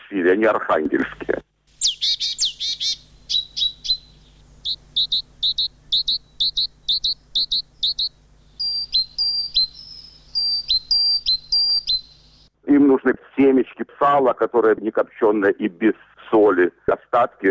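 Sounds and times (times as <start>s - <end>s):
speech: 0.1s - 1.5s, 13.0s - 17.4s
small birds chirping outdoors in winter: 1.7s - 12.5s.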